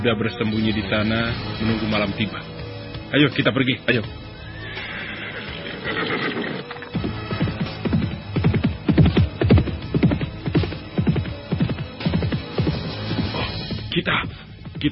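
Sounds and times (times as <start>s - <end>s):
speech: 0.0s - 2.5s, 3.1s - 4.2s, 5.8s - 6.8s
horse hooves galloping: 4.7s - 13.3s.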